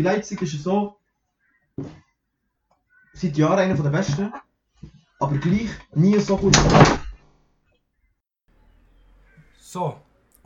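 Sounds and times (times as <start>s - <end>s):
speech: 0.0s - 1.0s, 1.8s - 2.0s, 3.2s - 7.0s, 9.7s - 10.4s
chair breaking with a crack and heavy thunk: 5.4s - 7.4s.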